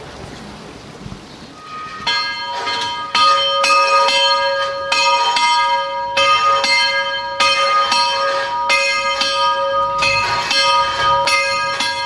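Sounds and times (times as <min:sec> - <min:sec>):
church bell rung by hand: 0:01.6 - 0:12.0.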